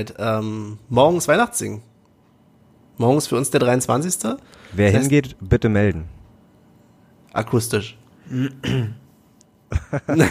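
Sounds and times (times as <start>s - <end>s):
speech: 0.0s - 1.9s, 3.0s - 6.2s, 7.4s - 9.0s, 9.7s - 10.2s
person clearing throat: 8.3s - 9.1s
laughter: 9.7s - 10.2s.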